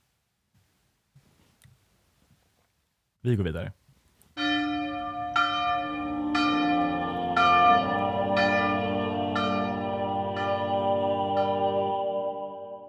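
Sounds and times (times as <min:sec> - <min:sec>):
speech: 0:03.2 - 0:03.8
church bells ringing: 0:04.4 - 0:12.6.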